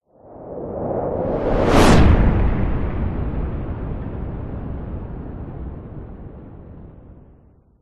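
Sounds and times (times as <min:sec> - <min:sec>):
cinematic massive heavy fast whoosh: 0:01.3 - 0:03.8.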